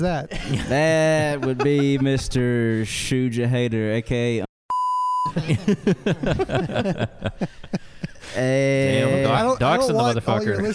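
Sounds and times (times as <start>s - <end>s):
speech: 0.0s - 4.4s, 5.4s - 10.7s
person talking rapidly in a clear voice: 0.0s - 4.5s, 8.4s - 10.7s
laughter: 0.2s - 2.6s, 5.2s - 10.7s
censor bleep tone: 4.7s - 5.3s.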